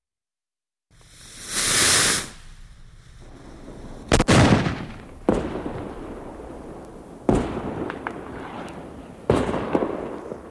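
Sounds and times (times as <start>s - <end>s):
firework rocket launching hiss: 0.9s - 9.3s
fireworks exploding with crackling decay near Kloten airport: 0.9s - 10.4s.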